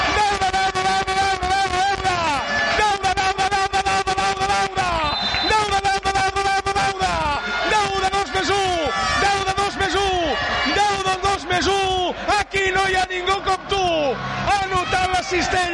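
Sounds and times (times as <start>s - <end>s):
arena crowd noise: 0.0s - 15.7s
basketball crowd chanting in the stands: 7.3s - 15.7s.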